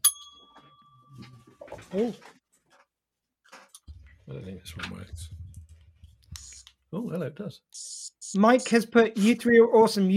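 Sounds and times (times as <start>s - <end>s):
small bell struck: 0.0s - 1.4s
speech: 1.9s - 2.4s, 4.3s - 5.4s, 6.9s - 10.1s.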